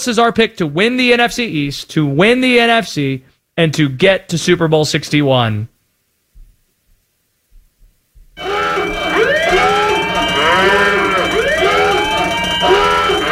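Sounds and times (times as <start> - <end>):
speech: 0.0 - 5.7
soft low thumps: 6.3 - 8.4
loud alarm siren with overlapping wailing tones: 8.4 - 13.3.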